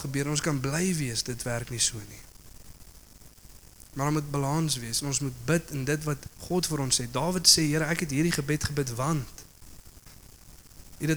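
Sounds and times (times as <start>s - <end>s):
generator powering a coffee machine droning: 0.0s - 2.3s, 4.0s - 9.5s
speech: 0.0s - 2.3s, 4.0s - 9.5s.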